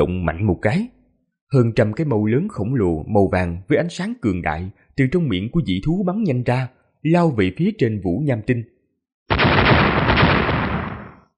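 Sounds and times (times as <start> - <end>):
speech: 0.0 - 8.7
loud explosion in space: 9.3 - 11.3.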